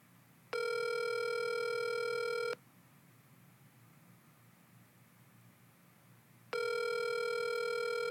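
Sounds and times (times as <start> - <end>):
phone line ringing while waiting for an answer: 0.6 - 2.6, 6.5 - 8.0.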